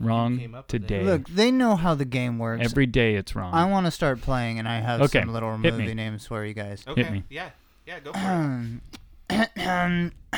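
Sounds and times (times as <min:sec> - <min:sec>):
speech: 0:00.0 - 0:10.3
exaggerated voiced fake throat clearing: 0:08.1 - 0:10.3.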